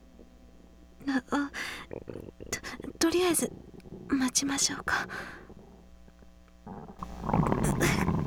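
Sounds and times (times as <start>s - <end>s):
hungry stomach rumbling: 0.0s - 8.2s
speech: 2.0s - 5.4s.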